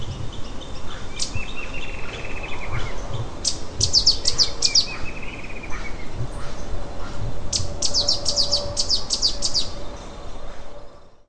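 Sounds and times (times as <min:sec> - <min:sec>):
low background rumble: 0:00.0 - 0:11.2
Streak-capped Antwren Terenura maculata chirping: 0:01.2 - 0:05.9, 0:07.5 - 0:09.8.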